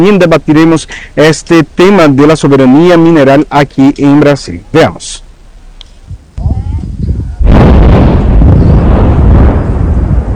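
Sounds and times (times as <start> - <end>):
speech: 0.0 - 5.2
heavy mining blast explosion: 6.1 - 10.3.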